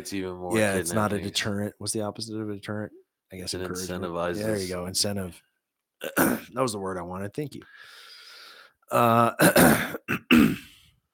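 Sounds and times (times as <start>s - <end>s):
speech: 0.0s - 8.0s, 8.9s - 10.6s
person clearing throat: 6.0s - 6.5s, 8.9s - 10.8s
person coughing: 6.0s - 6.5s, 9.1s - 10.8s.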